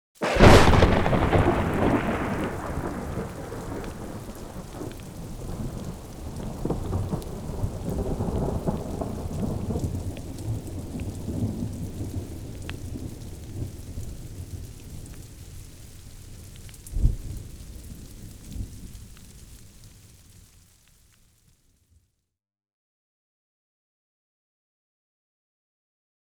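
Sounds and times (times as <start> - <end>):
thunderstorm: 0.2 - 19.8.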